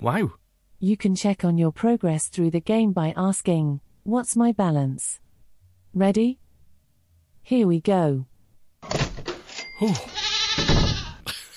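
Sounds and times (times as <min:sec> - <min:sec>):
speech: 0:00.0 - 0:05.2, 0:06.0 - 0:06.4, 0:07.4 - 0:09.0, 0:09.8 - 0:10.8
goat bleating: 0:09.9 - 0:11.3.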